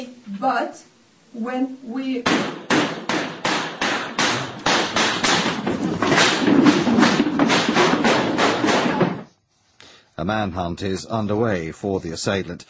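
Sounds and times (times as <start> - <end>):
speech: 0.0 - 2.7, 10.2 - 12.6
volley of gunshots recorded inside a cafe: 2.2 - 9.2.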